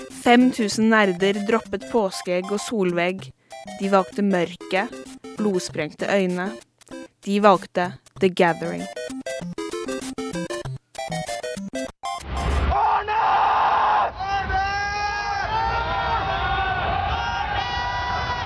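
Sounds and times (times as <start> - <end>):
choppy electronic tones: 0.0 - 12.6
speech: 0.2 - 9.5
crowd of thousands shouting a name in unison in a big hall in Hamar: 12.7 - 18.4.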